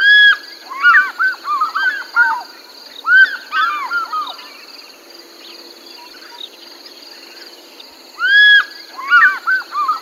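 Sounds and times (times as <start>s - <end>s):
African fish eagle giving ringing yelping calls: 0.0s - 2.4s, 3.0s - 4.4s, 8.2s - 9.9s.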